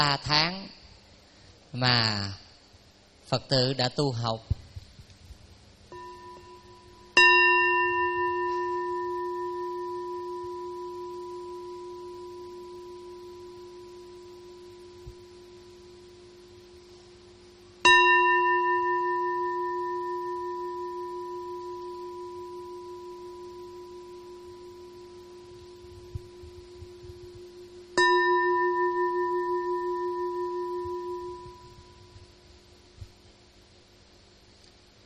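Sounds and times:
speech: 0.0s - 0.8s, 1.7s - 2.4s, 3.3s - 4.6s
Buddhist temple bell rung during seated meditation: 5.9s - 32.4s.

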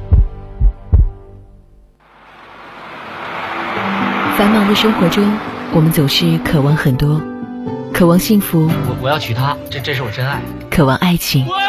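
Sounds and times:
heartbeat thumps: 0.0s - 1.3s
rising hiss of broadband noise: 2.0s - 6.3s
speech: 4.4s - 7.3s, 8.0s - 11.6s.

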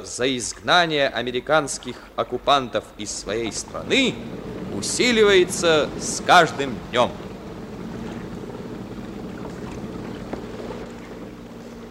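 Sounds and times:
speech: 0.0s - 7.2s
ship engines running at sea on a moonless night: 2.3s - 11.8s
windy hiss at sea: 3.1s - 11.8s.

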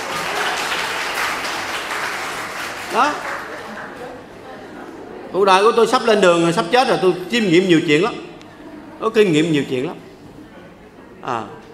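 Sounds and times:
audience applause during a Buddhist monk's dharma talk: 0.0s - 4.5s
speech: 2.9s - 3.3s, 5.3s - 8.3s, 9.0s - 10.0s, 11.2s - 11.6s.

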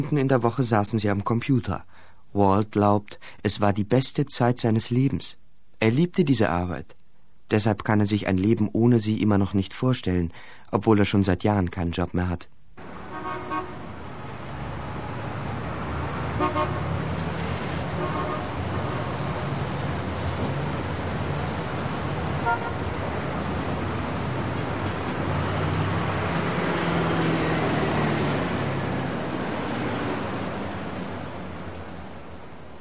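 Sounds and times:
speech: 0.0s - 12.5s
road traffic rushing past outside an office window: 12.8s - 32.7s
faint car horn toots: 13.0s - 13.9s, 16.4s - 17.0s, 17.9s - 19.4s, 22.4s - 22.9s.

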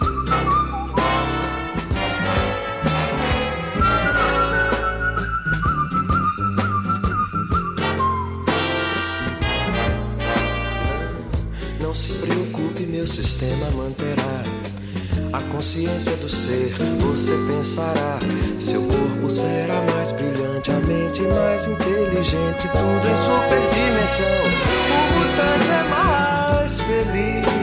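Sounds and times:
man whistling a clear steady melody: 0.0s - 1.9s, 3.6s - 9.2s, 15.8s - 27.6s
full band accompaniment: 0.0s - 27.6s
speech: 15.6s - 27.6s.

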